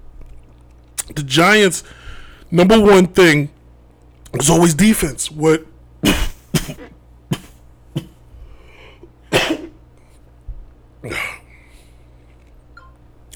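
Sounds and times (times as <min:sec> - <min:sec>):
speech: 0:01.1 - 0:03.6, 0:04.3 - 0:06.8
harsh explosive coughs from a speaker live on air: 0:06.0 - 0:08.2, 0:09.3 - 0:09.8, 0:11.0 - 0:11.5.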